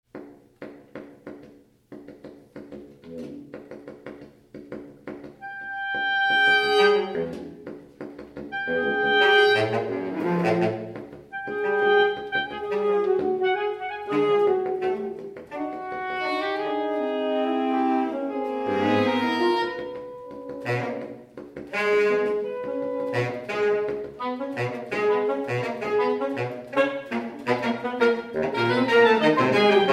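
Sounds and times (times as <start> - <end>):
saxophone: 5.3 - 7.7, 8.4 - 29.9.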